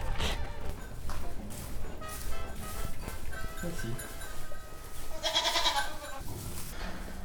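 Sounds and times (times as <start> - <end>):
people talking: 0.2 - 4.6
goats bleating: 5.1 - 6.2.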